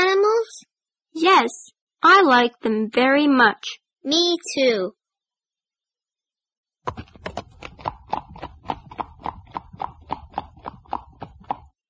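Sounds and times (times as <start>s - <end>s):
speech: 1.2s - 5.0s
horse hooves clip-clopping: 6.9s - 11.7s.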